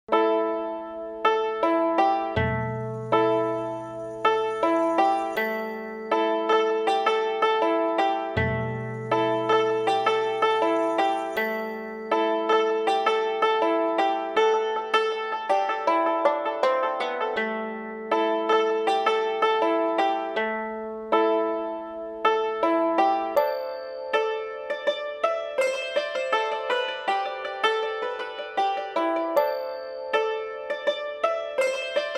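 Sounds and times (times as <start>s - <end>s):
Far East style music loop: 0.1s - 32.1s.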